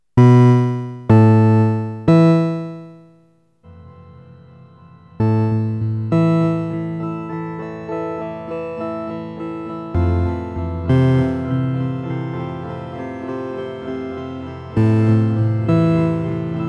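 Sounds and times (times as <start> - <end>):
MicroFreak synthesizer pseudo sequencer: 0.2 - 3.0, 5.2 - 7.3, 10.0 - 11.8, 14.8 - 16.6.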